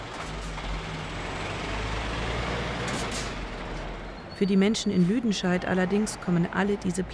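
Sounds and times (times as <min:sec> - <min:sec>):
dense road traffic rumbling: 0:00.0 - 0:07.1
heavy trucks and buses droning low: 0:00.0 - 0:07.1
air brakes hissing: 0:02.9 - 0:03.4
speech: 0:04.4 - 0:07.1.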